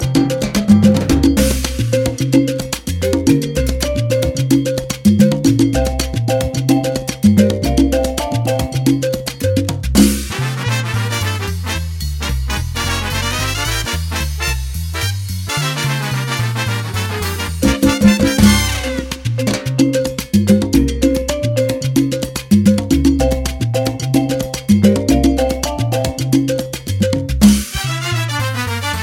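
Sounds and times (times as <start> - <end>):
latin jazz ringtone: 0.0 - 29.0.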